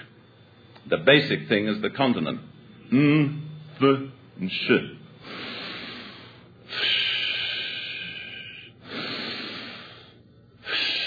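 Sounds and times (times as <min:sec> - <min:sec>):
speech: 0:00.9 - 0:05.5
deep slow breathing close to the microphone: 0:05.1 - 0:11.0.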